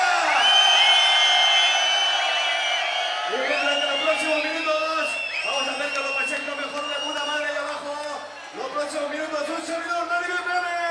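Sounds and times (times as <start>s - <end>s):
high whoops from the crowd: 0.0s - 7.7s
large crowd at a DJ session cheering and shouting: 0.0s - 10.9s
speech: 8.8s - 10.9s.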